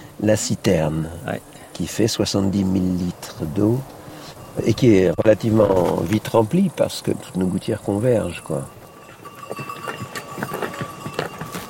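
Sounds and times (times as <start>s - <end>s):
outdoor hiss: 0.0s - 9.0s
donkey hooves clopping on footpath: 0.0s - 11.6s
faint continuous whine: 0.0s - 11.6s
speech: 0.2s - 4.0s, 4.6s - 8.8s.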